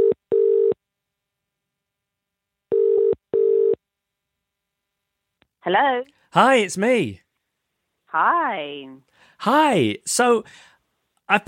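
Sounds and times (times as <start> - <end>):
telephone ringback tone as a phone call is placed: 0.0 - 0.8, 2.7 - 3.8
speech: 5.7 - 7.2, 8.1 - 10.7, 11.3 - 11.4.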